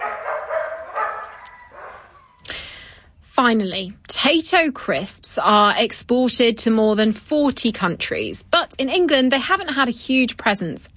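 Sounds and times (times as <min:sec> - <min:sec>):
dog barking in short high bursts: 0:00.0 - 0:02.2
speech: 0:03.4 - 0:10.9.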